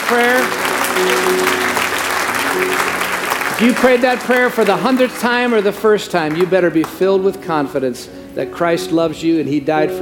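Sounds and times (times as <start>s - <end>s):
congregation applauding with hand claps during a worship service: 0.0s - 7.4s
speech: 0.1s - 1.8s, 2.5s - 3.0s, 3.6s - 9.9s.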